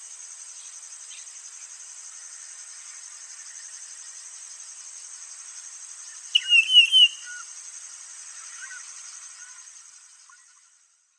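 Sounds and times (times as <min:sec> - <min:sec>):
wavering whistled bird song: 0:06.3 - 0:07.5.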